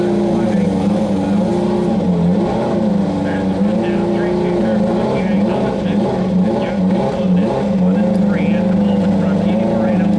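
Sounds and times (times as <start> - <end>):
turbocharged V8 race car engines at a street race: 0.0 - 10.1.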